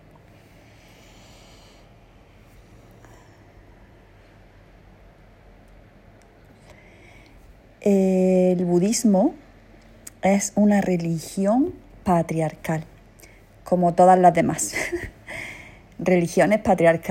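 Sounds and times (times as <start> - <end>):
faint steady hiss: 0.0 - 17.0
slow deep breath drawn in and released: 0.3 - 4.7, 6.6 - 7.6, 15.2 - 15.9
speech: 7.8 - 9.4, 10.2 - 12.9, 13.7 - 15.2, 16.0 - 17.0.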